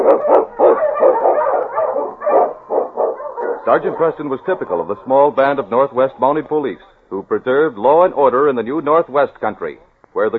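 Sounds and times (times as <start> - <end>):
husky sled dog barking and yipping: 0.0 - 5.3
speech: 3.7 - 10.3.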